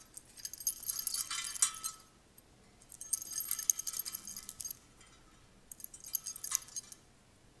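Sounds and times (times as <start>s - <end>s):
chains rattling: 0.0s - 2.0s, 2.8s - 4.8s, 5.7s - 7.0s.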